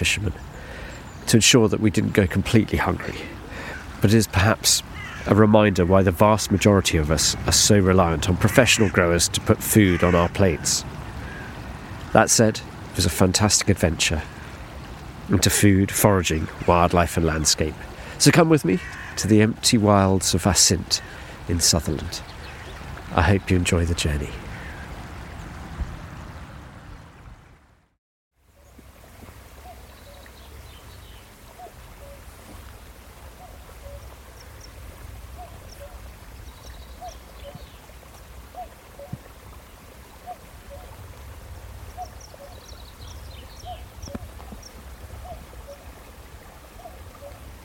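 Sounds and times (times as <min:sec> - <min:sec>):
speech: 0:00.0 - 0:03.4, 0:04.0 - 0:11.0, 0:12.1 - 0:14.4, 0:15.3 - 0:22.4, 0:23.1 - 0:24.4
rush of running water: 0:00.0 - 0:47.6
cuckoo calling across a small glen in Assynt, Sutherland, Scotland: 0:29.6 - 0:32.3, 0:33.3 - 0:34.7, 0:35.4 - 0:37.8, 0:38.5 - 0:39.3, 0:40.2 - 0:41.0, 0:42.0 - 0:45.9, 0:46.8 - 0:47.4.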